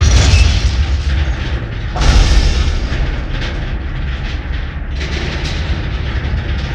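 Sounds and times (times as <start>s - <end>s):
structural expansion explosion: 0.0s - 6.6s.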